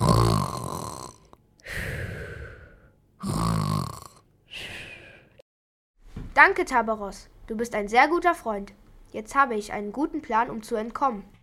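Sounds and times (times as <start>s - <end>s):
man snoring after drinking potion: 0.0s - 5.4s
speech: 6.4s - 11.4s.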